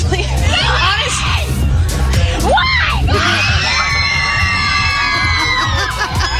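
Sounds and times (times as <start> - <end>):
crowd of fans screaming and cheering excitedly: 0.4 - 6.3
laughter: 4.5 - 6.3.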